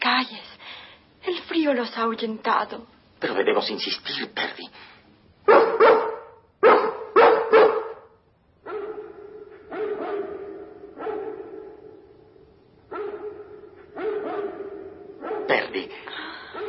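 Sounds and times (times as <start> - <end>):
speech: 1.6 - 4.9
Great Dane barking at night: 5.4 - 12.2, 12.8 - 15.9.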